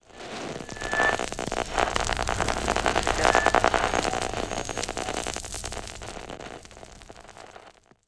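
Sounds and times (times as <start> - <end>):
random data transmission sounds in an ambient citadel: 0.2 - 5.8.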